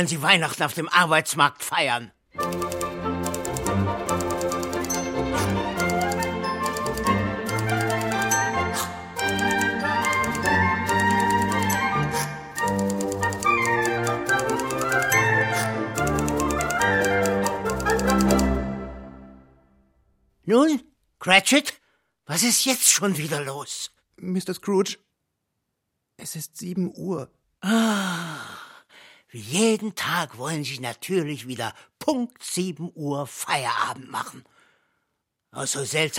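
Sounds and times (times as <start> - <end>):
speech: 0.0 - 2.8, 20.5 - 25.0, 26.2 - 28.6, 29.3 - 34.5, 35.5 - 36.1
busy melodic music bed: 2.3 - 19.9
typewriter clacking: 2.4 - 18.5.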